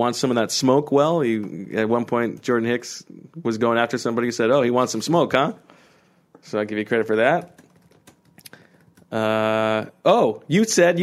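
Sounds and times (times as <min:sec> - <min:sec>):
speech: 0:00.0 - 0:05.8, 0:06.4 - 0:07.6, 0:09.1 - 0:11.0
quiet irregular computer keyboard typing: 0:07.2 - 0:09.3.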